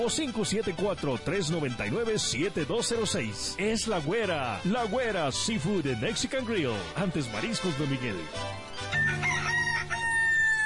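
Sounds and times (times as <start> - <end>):
speech: 0.0 - 8.7
rooster crowing: 8.9 - 10.6.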